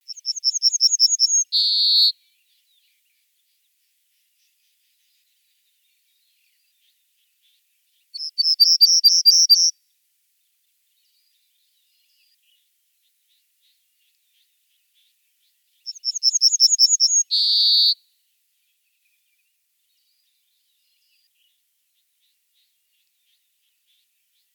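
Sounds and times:
pine bunting voice: 0.1s - 2.1s, 8.2s - 9.7s, 15.9s - 18.0s.

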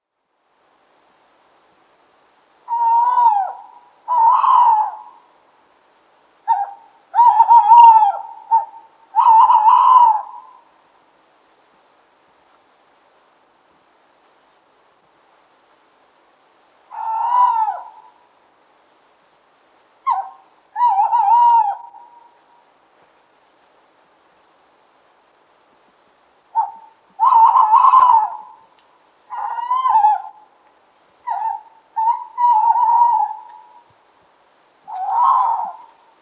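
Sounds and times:
tawny owl calling: 2.6s - 5.3s, 6.4s - 10.8s, 16.9s - 18.2s, 20.0s - 22.6s, 26.5s - 30.6s, 31.2s - 33.9s, 34.8s - 36.1s.

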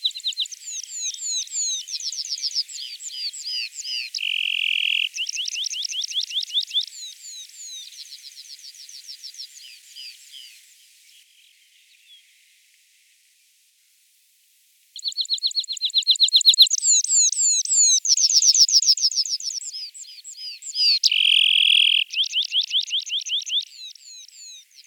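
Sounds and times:
red-throated pipit calling: 0.0s - 7.7s, 15.0s - 24.8s.

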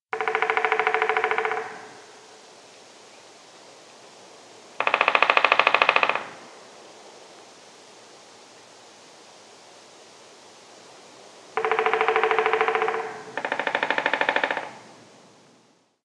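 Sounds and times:
three-toed woodpecker calling: 0.1s - 2.2s, 4.8s - 6.4s, 11.6s - 14.9s.

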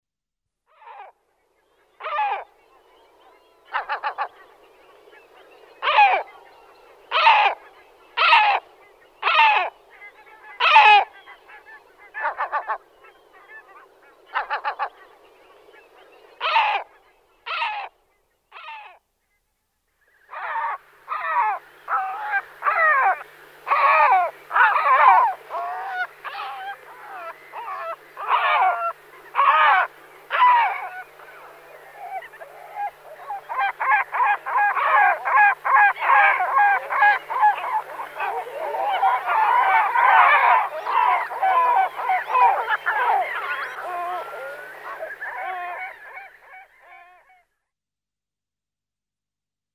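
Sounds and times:
great black-backed gull calling: 5.8s - 6.4s, 7.1s - 15.1s, 16.4s - 16.9s, 20.3s - 47.3s.

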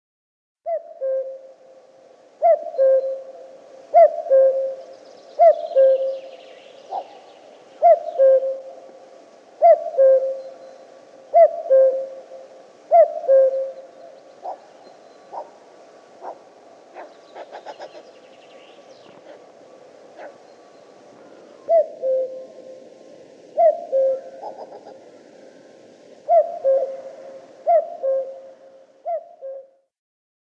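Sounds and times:
common cuckoo calling: 0.7s - 1.6s, 2.4s - 9.0s, 9.6s - 15.6s, 16.2s - 29.8s.

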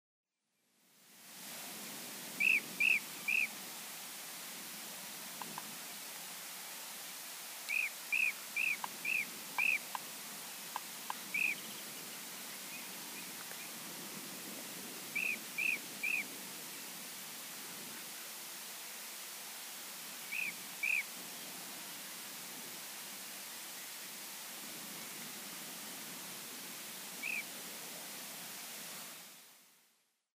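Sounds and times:
blue-cheeked bee-eater voice: 2.4s - 3.5s, 7.7s - 10.0s, 11.1s - 11.8s, 15.2s - 16.2s, 20.3s - 21.1s, 27.2s - 27.5s.

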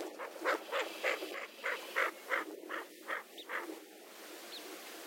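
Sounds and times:
greater scaup calling: 0.2s - 3.7s.

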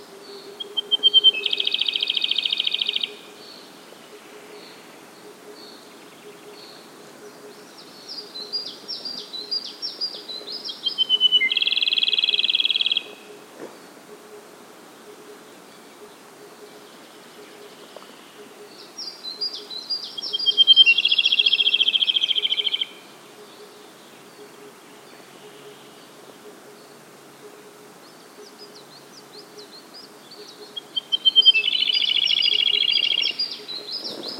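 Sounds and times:
Siberian blue robin voice: 0.0s - 4.8s, 7.6s - 13.4s, 16.9s - 27.0s, 28.0s - 34.3s.

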